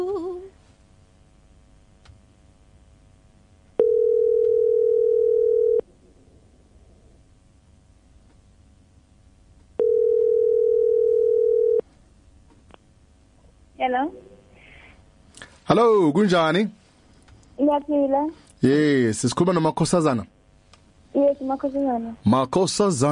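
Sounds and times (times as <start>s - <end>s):
faint low hiss: 0.0s - 23.0s
telephone tone while calling a competition winner: 3.8s - 5.8s, 9.8s - 11.8s
speech: 15.8s - 16.8s, 17.6s - 20.3s, 21.2s - 23.0s.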